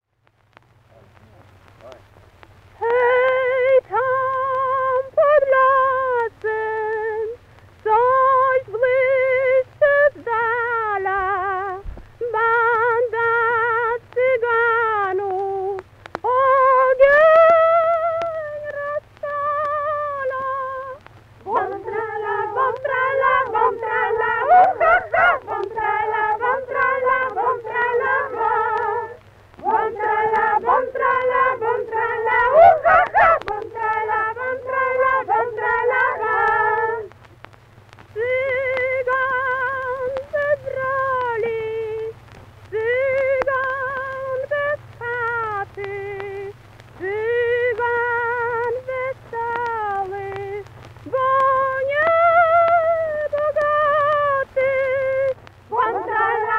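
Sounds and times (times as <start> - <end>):
Polish wedding song: 2.7 - 56.5.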